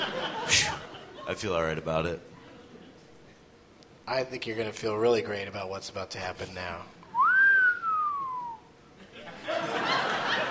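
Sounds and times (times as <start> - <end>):
laughter: 0.0 - 1.5, 2.3 - 3.4, 9.0 - 10.5
speech: 1.3 - 2.3, 4.1 - 7.0
wolf whistle: 7.1 - 8.7.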